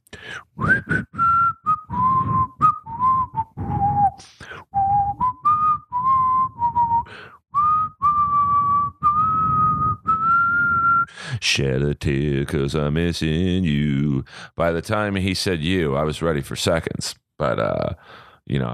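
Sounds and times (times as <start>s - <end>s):
speech: 0.4s - 1.1s, 11.6s - 18.7s
whistled melody in a song intro: 0.6s - 11.1s.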